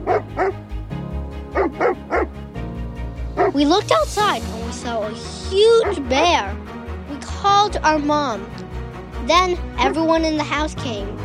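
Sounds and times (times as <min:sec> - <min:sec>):
dog barking with short yelping barks: 0:00.0 - 0:00.6, 0:01.6 - 0:02.3, 0:03.4 - 0:03.6, 0:05.8 - 0:06.1
steady low hum or music bed: 0:00.0 - 0:11.2
speech: 0:03.6 - 0:06.6, 0:07.4 - 0:08.6, 0:09.2 - 0:11.2.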